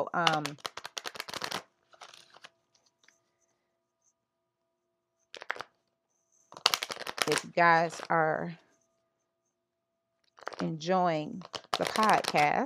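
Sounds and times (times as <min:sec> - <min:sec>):
speech: 0:00.0 - 0:00.8, 0:07.3 - 0:08.6, 0:10.6 - 0:12.6
oracle cards being shuffled before a card is pulled: 0:00.0 - 0:03.2, 0:05.3 - 0:05.8, 0:06.5 - 0:08.1, 0:10.4 - 0:10.8, 0:11.4 - 0:12.6.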